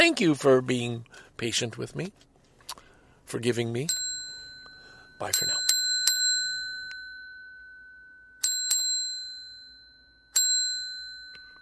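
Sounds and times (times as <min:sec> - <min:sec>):
speech: 0:00.1 - 0:02.3, 0:03.3 - 0:04.0, 0:05.2 - 0:05.6
small bell ringing: 0:03.8 - 0:11.5.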